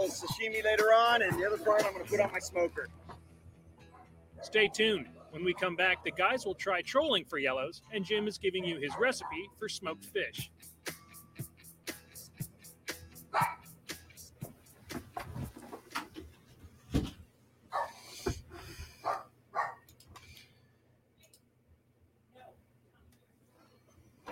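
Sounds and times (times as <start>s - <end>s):
speech: 0.0s - 3.0s, 4.4s - 11.0s
dogs barking: 3.8s - 6.6s, 8.6s - 9.6s, 13.2s - 13.8s, 17.7s - 18.1s, 18.9s - 19.9s.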